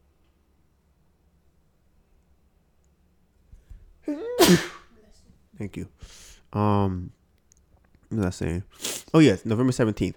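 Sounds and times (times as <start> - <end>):
speech: 4.1 - 4.8, 5.6 - 7.2, 8.1 - 10.1
human sneeze with a rising breathy inhale: 4.1 - 4.9.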